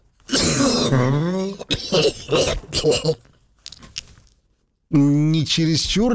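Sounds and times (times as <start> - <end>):
person giving a deep guttural rasping cough: 0.3 - 3.3
speech: 0.9 - 3.3, 4.9 - 6.1.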